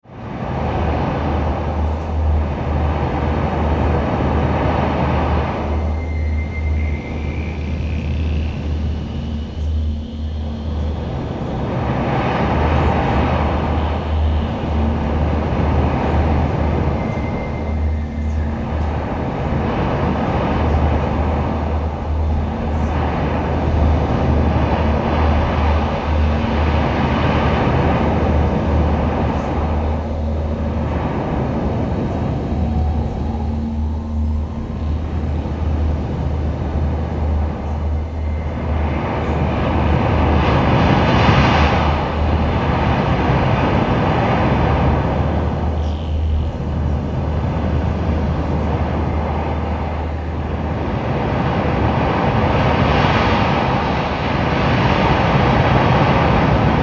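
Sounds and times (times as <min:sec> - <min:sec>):
wind: 0:00.0 - 0:56.8.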